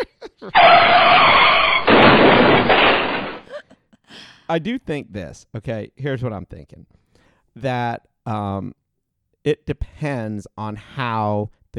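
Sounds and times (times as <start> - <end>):
speech: 0.0 - 1.0, 4.5 - 7.0, 7.6 - 8.8, 9.4 - 11.7
car skidding sound effect screech: 0.6 - 3.4.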